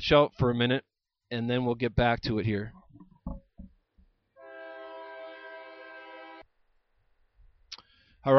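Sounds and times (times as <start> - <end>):
speech: 0.1 - 3.4
train horn blast: 4.4 - 6.5.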